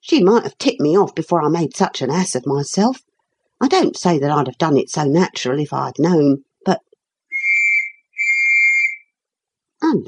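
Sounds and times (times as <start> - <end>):
speech: 0.0 - 6.9
shrill whistle blasts: 7.3 - 9.1.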